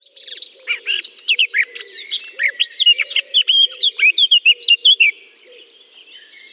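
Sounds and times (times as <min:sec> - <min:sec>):
Eurasian blackcap singing in a holly bush: 0:00.2 - 0:05.2.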